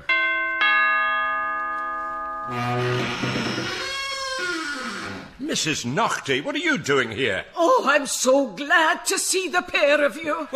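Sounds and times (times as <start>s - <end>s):
doorbell two-tone ding-dong chime: 0.1s - 2.8s
speech: 2.5s - 3.9s, 5.4s - 10.5s.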